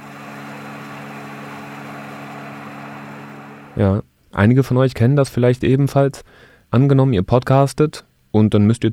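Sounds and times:
computer cooling fan whirring: 0:00.0 - 0:04.0
speech: 0:03.8 - 0:08.9.

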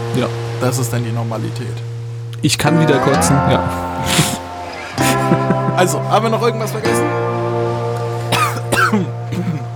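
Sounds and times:
speech: 0:00.2 - 0:01.9, 0:02.4 - 0:04.4, 0:05.3 - 0:07.5, 0:08.9 - 0:09.6
laughter: 0:03.2 - 0:07.0
person coughing: 0:03.9 - 0:05.7, 0:08.3 - 0:09.7.

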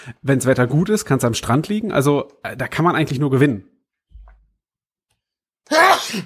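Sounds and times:
speech: 0:00.0 - 0:03.7, 0:05.7 - 0:06.2
sneeze: 0:05.7 - 0:06.2.

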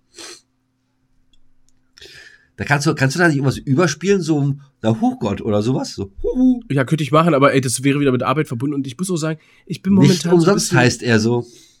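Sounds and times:
faint breathing: 0:02.0 - 0:02.6, 0:09.4 - 0:09.7
speech: 0:02.6 - 0:11.7
person sneezing: 0:10.0 - 0:10.2.

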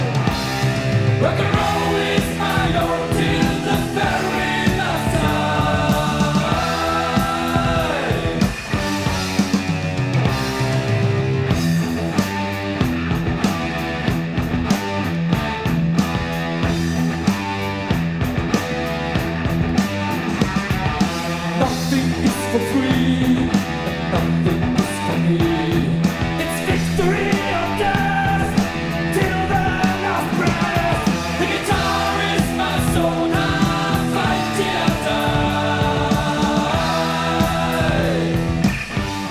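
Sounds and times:
thick distorted heavy metal guitar riff: 0:00.0 - 0:39.2
pounding heavy metal drums: 0:00.1 - 0:11.8, 0:24.4 - 0:39.2.

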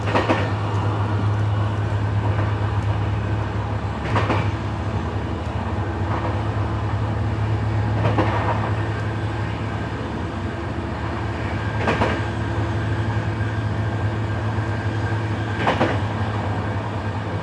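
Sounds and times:
sharp clacks from the track joints: 0:00.0 - 0:01.0, 0:04.0 - 0:04.6, 0:08.0 - 0:09.1, 0:11.8 - 0:12.3, 0:15.5 - 0:16.1
train carriage rumble and hum: 0:00.0 - 0:17.4.

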